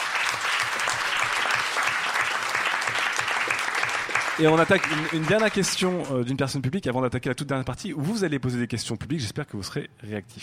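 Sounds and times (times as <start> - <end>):
audience applause for a columnist: 0.0 - 6.1
speech: 4.4 - 10.4.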